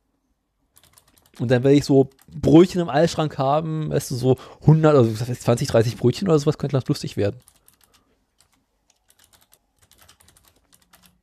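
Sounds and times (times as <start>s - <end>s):
rapid typing on a computer keyboard: 0.8s - 2.8s, 7.4s - 11.2s
speech: 1.4s - 7.6s.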